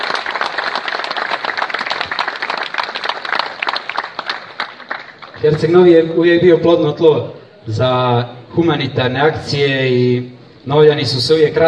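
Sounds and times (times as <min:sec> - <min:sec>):
audience applause at an evening charity event in Herceg Novi: 0:00.0 - 0:05.4
speech: 0:05.4 - 0:11.6.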